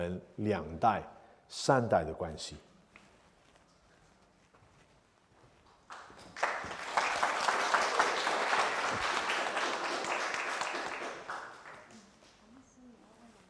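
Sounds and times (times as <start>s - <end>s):
speech: 0.0s - 2.7s
audience clapping: 5.6s - 12.4s.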